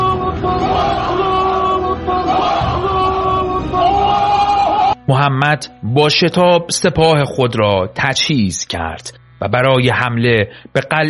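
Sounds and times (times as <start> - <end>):
large crowd shouting a battle cry in unison: 0.0 - 5.0
speech: 5.1 - 11.0.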